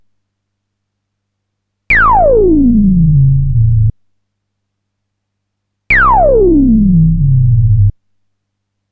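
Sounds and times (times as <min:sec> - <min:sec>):
synthesizer bass: 0:02.0 - 0:03.9, 0:05.9 - 0:07.9.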